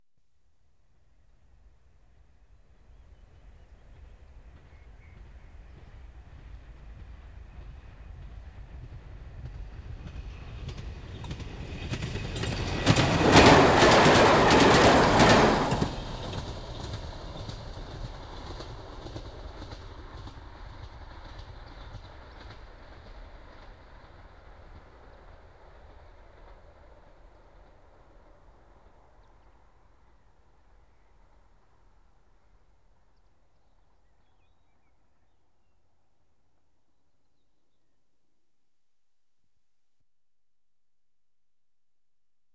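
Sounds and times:
diesel railcar train passing: 0:04.5 - 0:29.0.

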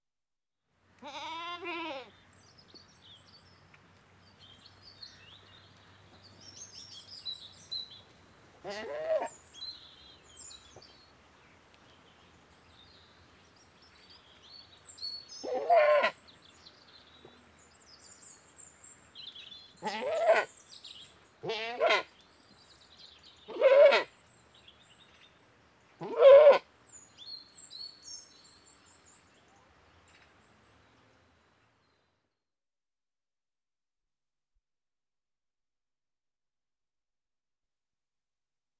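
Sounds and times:
British Saanen goat bleating: 0:01.0 - 0:02.1, 0:08.6 - 0:09.3, 0:15.5 - 0:16.1, 0:19.8 - 0:20.5, 0:21.4 - 0:22.1, 0:23.5 - 0:24.1, 0:26.0 - 0:26.6.

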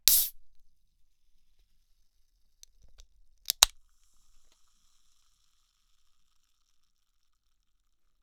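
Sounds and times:
tin cola can opening: 0:00.1 - 0:00.3, 0:03.5 - 0:03.7.

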